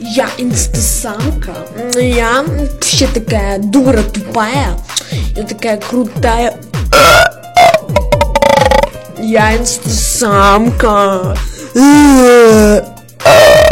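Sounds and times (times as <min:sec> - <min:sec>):
speech: 0:00.1 - 0:07.2, 0:09.2 - 0:12.9
loud close-miked burps: 0:06.9 - 0:09.0, 0:13.2 - 0:13.7.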